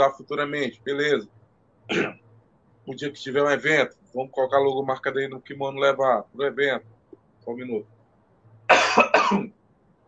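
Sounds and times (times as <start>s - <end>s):
speech: 0.0s - 2.2s, 2.9s - 7.9s, 8.7s - 9.6s
dry coughs from a parched throat: 1.9s - 2.2s, 8.7s - 9.6s.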